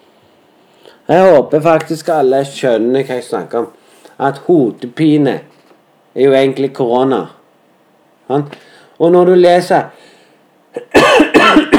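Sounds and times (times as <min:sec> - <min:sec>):
speech: 0:01.1 - 0:05.5, 0:06.2 - 0:07.4, 0:08.3 - 0:10.0, 0:10.8 - 0:11.6
smoker coughing harshly: 0:10.8 - 0:11.7.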